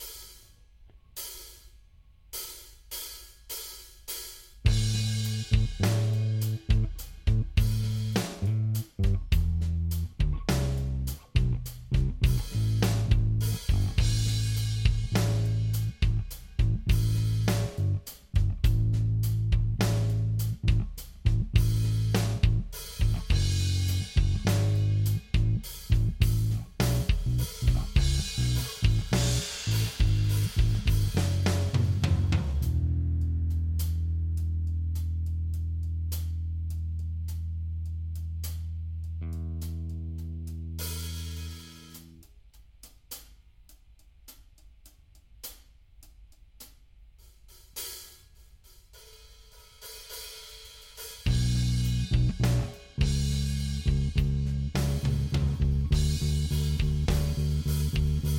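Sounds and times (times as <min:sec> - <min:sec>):
backing track with chords and open notes: 0:04.6 - 0:43.2, 0:51.2 - 0:58.3.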